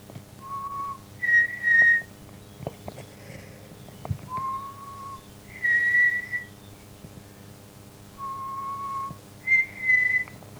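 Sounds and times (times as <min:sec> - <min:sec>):
person whistling a two-note signal call: 0:00.4 - 0:02.1, 0:04.4 - 0:06.5, 0:08.2 - 0:10.4.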